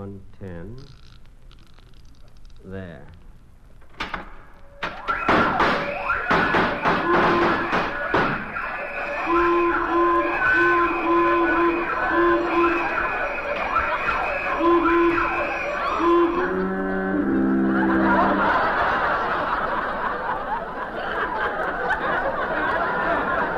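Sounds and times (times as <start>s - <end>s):
heavy clunks and clicks: 3.7s - 8.5s
vault burglar alarm blaring: 4.0s - 19.8s
laughter: 10.8s - 23.5s.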